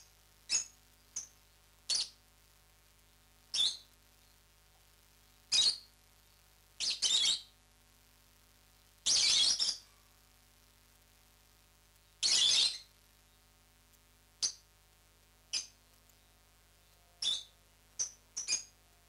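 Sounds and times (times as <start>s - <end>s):
rosy-faced lovebird Agapornis roseicollis chirping: 0.5s - 2.2s, 3.5s - 4.4s, 5.5s - 7.5s, 9.0s - 10.0s, 12.0s - 13.5s, 14.4s - 14.7s, 15.5s - 19.0s.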